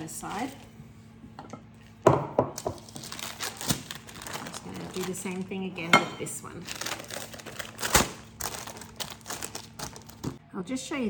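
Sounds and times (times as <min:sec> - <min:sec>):
speech: 0:00.0 - 0:00.7, 0:05.0 - 0:07.0, 0:10.6 - 0:11.0
paper peeled away from soft pastry: 0:02.8 - 0:05.6, 0:06.6 - 0:10.3.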